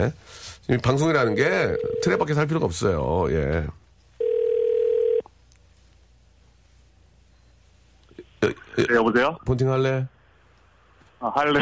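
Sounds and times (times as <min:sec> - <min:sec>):
speech: 0:00.0 - 0:03.8, 0:08.4 - 0:10.2, 0:11.2 - 0:11.6
telephone dial tone while placing a call: 0:04.2 - 0:05.3.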